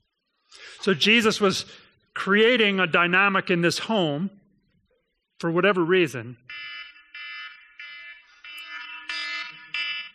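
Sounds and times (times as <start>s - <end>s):
speech: 0.8s - 4.4s, 5.4s - 6.7s
submarine collision alarm blaring: 6.4s - 10.1s.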